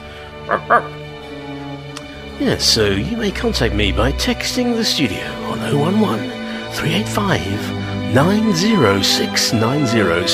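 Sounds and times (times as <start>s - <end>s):
dog barking in a radio studio: 0.5s - 1.0s
speech: 0.5s - 1.0s, 2.4s - 10.3s.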